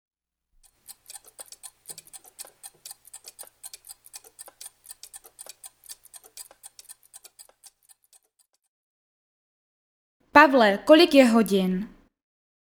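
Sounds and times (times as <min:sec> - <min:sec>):
clock ticking: 0:00.6 - 0:08.5
speech: 0:10.4 - 0:12.0.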